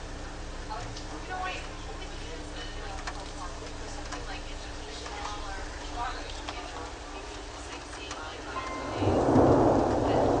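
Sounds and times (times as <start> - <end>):
steady rain hiss: 0.0 - 10.3
deep rolling rumble of thunder: 8.6 - 10.3.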